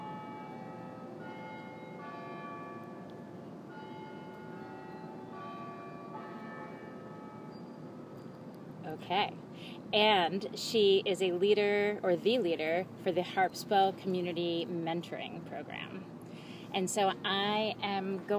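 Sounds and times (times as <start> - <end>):
church bells ringing: 0.0 - 8.3
constant hum: 0.0 - 18.3
speech: 8.9 - 18.3.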